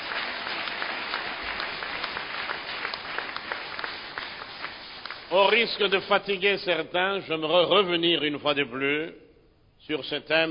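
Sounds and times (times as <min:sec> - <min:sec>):
congregation applauding during a church service: 0:00.0 - 0:06.4
speech: 0:05.3 - 0:09.2, 0:09.9 - 0:10.4.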